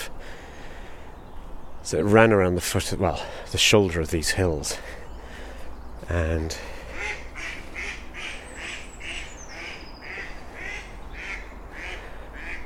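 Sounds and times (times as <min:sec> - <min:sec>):
speech: 0:01.9 - 0:05.0, 0:06.1 - 0:07.2
female ducks quacking, disturbed by a walker on a canal towpath: 0:06.9 - 0:12.6.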